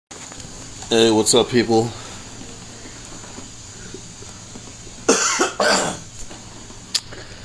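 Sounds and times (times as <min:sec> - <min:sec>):
speech: 0:00.9 - 0:02.0
harsh coughs: 0:05.1 - 0:06.1
soft throat-clearing rasp: 0:05.1 - 0:06.1.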